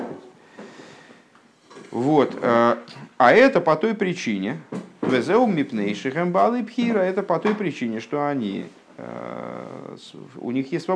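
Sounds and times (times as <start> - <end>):
wooden chair knocking dully on the floor: 0.0 - 0.3, 4.7 - 5.4, 6.8 - 7.7
speech: 2.0 - 9.4, 10.0 - 10.9.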